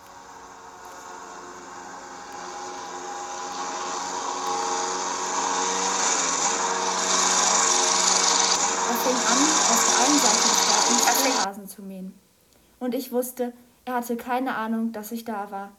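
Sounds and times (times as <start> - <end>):
lawnmower engine running in a garden: 0.0 - 11.5
speech: 12.8 - 15.7.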